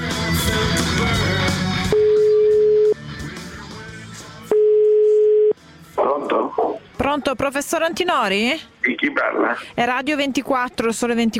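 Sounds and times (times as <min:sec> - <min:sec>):
music: 0:00.0 - 0:08.6
telephone ringback tone while a call is being placed: 0:01.9 - 0:03.0, 0:04.5 - 0:05.5
speech: 0:07.2 - 0:11.3.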